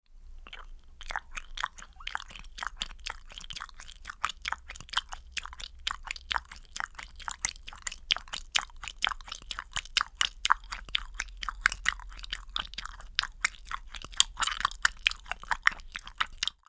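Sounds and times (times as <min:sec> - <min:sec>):
cartoon animal drinking water: 0:00.3 - 0:16.6.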